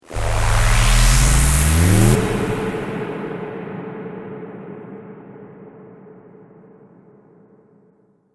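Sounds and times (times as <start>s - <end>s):
electronic trailer riser rising and diving: 0.0s - 3.2s.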